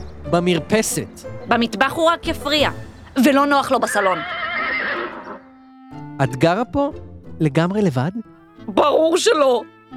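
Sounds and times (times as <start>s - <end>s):
speech: 0.3s - 4.3s, 6.2s - 9.7s
horse neighing: 3.8s - 5.5s
horse snorting: 3.9s - 5.4s.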